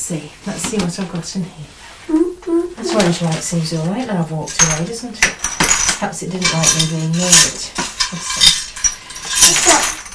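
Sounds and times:
speech: 0.1s - 8.6s
pound coins clinking as they are handled: 4.6s - 10.1s.

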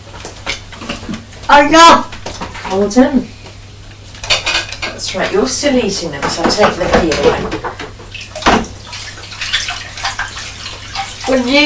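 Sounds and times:
speech: 1.5s - 2.1s, 2.7s - 3.3s, 5.0s - 7.8s, 11.3s - 11.6s
water running from a tap as sticky fingers are rinsed: 8.1s - 11.6s.

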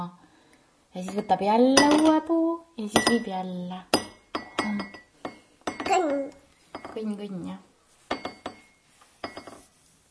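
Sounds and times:
speech: 0.0s - 0.2s, 0.9s - 4.0s, 4.6s - 5.0s, 5.9s - 7.7s
glass flower ornament clinking: 1.1s - 2.3s, 2.9s - 3.3s, 3.9s - 7.1s, 8.1s - 9.7s.

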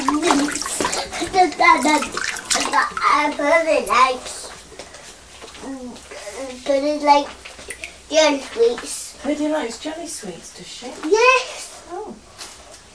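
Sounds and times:
running water rinsing a small beaker: 0.0s - 3.9s
child talking: 0.0s - 4.6s, 5.6s - 7.4s, 8.1s - 9.4s, 11.0s - 12.2s
speech: 1.8s - 2.2s, 3.2s - 4.4s, 5.7s - 7.4s, 8.1s - 12.2s.

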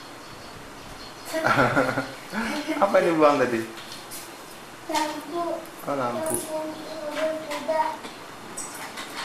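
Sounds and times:
speech: 1.3s - 2.2s, 2.8s - 3.8s, 4.9s - 8.1s
child-like voices: 4.9s - 8.1s.

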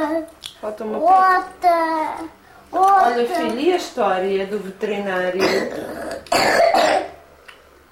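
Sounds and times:
speech: 0.2s - 7.1s
person coughing harshly: 5.4s - 7.2s.

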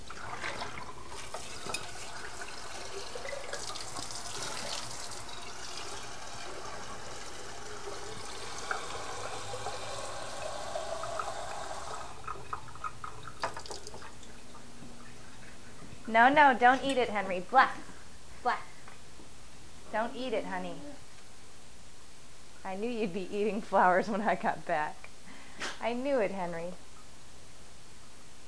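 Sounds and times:
water pouring from a tap for flowers: 0.0s - 15.4s
speech: 16.1s - 18.6s, 20.0s - 20.9s, 22.7s - 25.0s, 25.8s - 26.8s.

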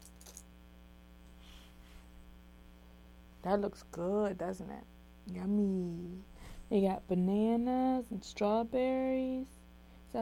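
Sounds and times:
keys being handled with metallic clinks and jingles: 0.0s - 0.4s
steady electrical hum: 0.0s - 10.2s
speech: 3.4s - 10.2s.

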